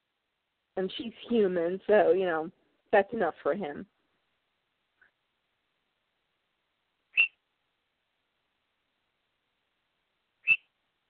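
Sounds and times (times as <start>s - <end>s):
speech: 0.8s - 4.0s
pet bird screeches: 7.1s - 7.4s, 10.4s - 10.7s.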